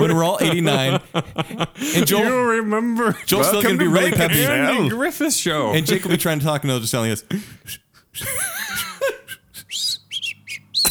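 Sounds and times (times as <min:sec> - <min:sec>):
laughter: 0:00.0 - 0:06.3, 0:07.3 - 0:10.0
speech: 0:00.2 - 0:09.9
person whistling: 0:09.7 - 0:10.9.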